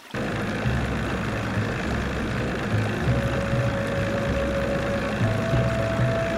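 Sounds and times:
motorboat engine idling on a lake before departure: 0.1s - 6.3s.

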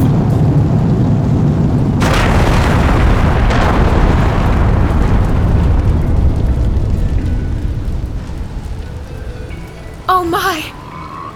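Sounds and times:
remotely detonated bomb exploding on a ship: 0.0s - 8.6s.

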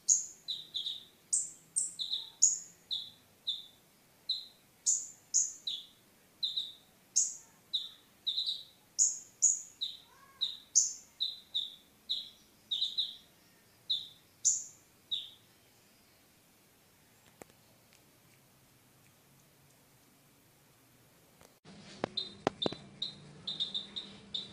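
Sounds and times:
Oriental magpie-robin singing: 0.0s - 16.3s, 22.1s - 24.5s.

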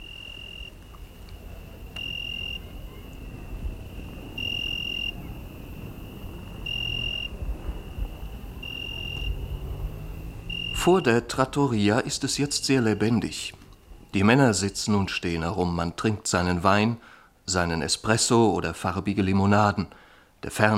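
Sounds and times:
cicadas and crickets chirping at night in an Italian village: 0.0s - 15.5s
speech: 10.8s - 20.7s.

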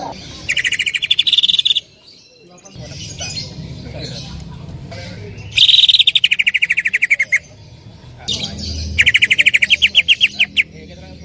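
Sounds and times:
female Greater green leafbird chipping notes: 0.3s - 3.5s, 5.4s - 7.6s, 8.3s - 11.2s.

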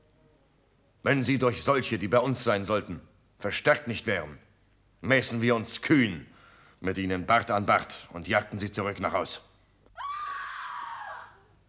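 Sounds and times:
speech: 1.0s - 10.1s
women screaming: 10.0s - 11.6s.

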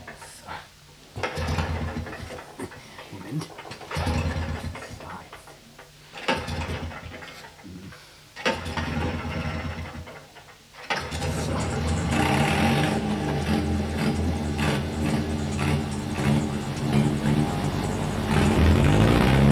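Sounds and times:
motor vehicle engine starting and running: 1.2s - 2.5s, 3.5s - 4.8s, 6.2s - 7.6s, 8.4s - 19.5s.

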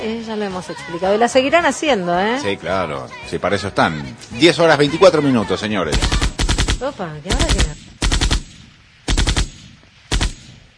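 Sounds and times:
speech: 0.0s - 7.9s
hitmen's guns firing bursts of rapid automatic fire: 5.9s - 10.6s.

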